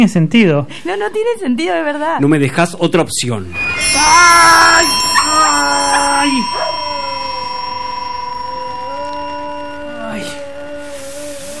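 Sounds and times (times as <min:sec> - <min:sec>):
speech: 0:00.0 - 0:05.1
very loud piercing high-pitched hearing aid beep: 0:03.5 - 0:10.9.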